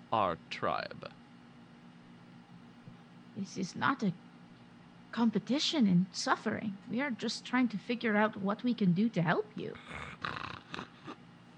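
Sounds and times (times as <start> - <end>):
speech: 0.1 - 1.2, 3.4 - 4.2, 5.1 - 10.3
low rumbling wolf growl: 9.8 - 11.1.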